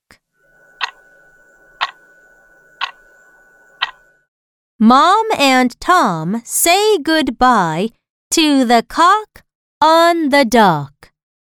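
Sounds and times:
faint continuous hum: 0:00.0 - 0:04.3
clock ticking: 0:00.8 - 0:01.0, 0:02.8 - 0:03.1, 0:03.8 - 0:04.0
speech: 0:04.8 - 0:10.9.

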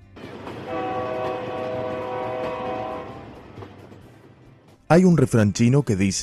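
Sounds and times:
moving train rumbling and clattering: 0:00.0 - 0:05.8
train whistle blowing: 0:00.7 - 0:03.4
speech: 0:04.9 - 0:06.2.

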